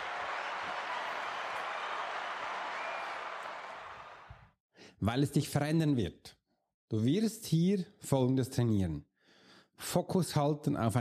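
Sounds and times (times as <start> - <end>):
crowd applause: 0.0 - 4.5
speech: 5.0 - 9.1, 9.8 - 10.9.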